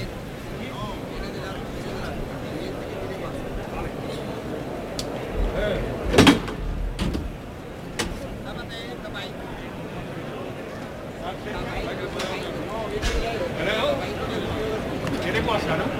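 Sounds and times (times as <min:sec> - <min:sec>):
murmur of a large outdoor crowd: 0:00.0 - 0:15.9
heavy wooden bull-pen gate at a bullring banging and scraping open: 0:06.1 - 0:07.4.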